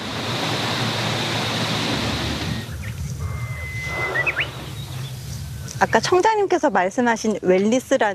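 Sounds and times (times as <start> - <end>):
strong wind rustling tree leaves in a forest: 0.0 - 8.1
faint bird chirps: 2.6 - 6.1
speech: 5.8 - 8.1.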